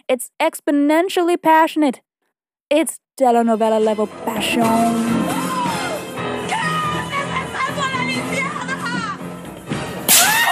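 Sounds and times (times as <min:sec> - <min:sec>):
speech: 0:00.1 - 0:02.1, 0:02.7 - 0:05.3
dramatic orchestral music: 0:03.8 - 0:10.2
face slap: 0:10.1 - 0:10.4.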